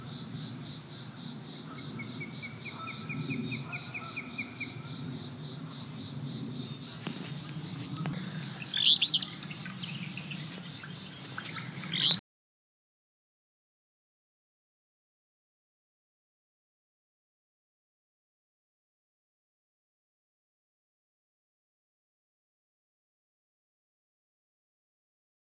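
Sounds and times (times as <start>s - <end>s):
flycatcher calling: 0.0s - 12.2s.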